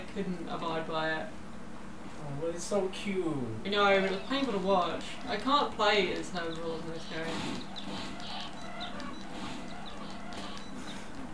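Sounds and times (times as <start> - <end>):
steady noisy hum: 0.0 - 11.3
speech: 0.2 - 1.4, 2.2 - 8.2
video game chickens clucking as the player slaughters them: 3.7 - 11.3.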